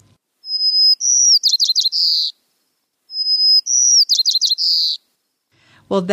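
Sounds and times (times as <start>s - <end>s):
white-crowned sparrow song: 0.0s - 2.4s, 3.1s - 5.1s.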